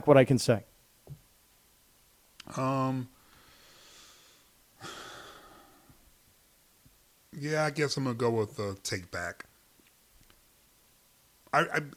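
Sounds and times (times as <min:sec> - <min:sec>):
speech: 0:00.0 - 0:00.7, 0:02.5 - 0:03.1, 0:07.4 - 0:09.5, 0:11.5 - 0:11.9
heavy airy breathing: 0:03.2 - 0:06.1.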